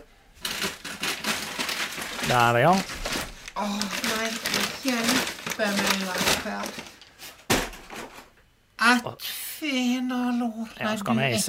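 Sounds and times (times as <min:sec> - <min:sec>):
fairly loud paper crinkling: 0:00.4 - 0:08.2
speech: 0:02.3 - 0:03.0, 0:03.6 - 0:07.0, 0:08.8 - 0:11.4.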